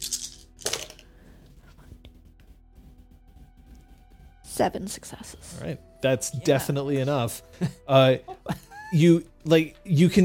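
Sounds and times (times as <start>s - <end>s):
two dice clattering across a surface: 0.0s - 1.0s
speech: 4.6s - 10.2s
laughter: 7.6s - 9.2s.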